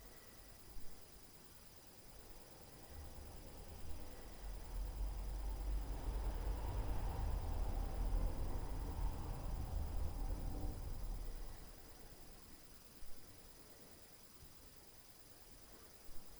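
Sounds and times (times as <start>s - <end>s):
streetcar noise: 2.9s - 12.0s.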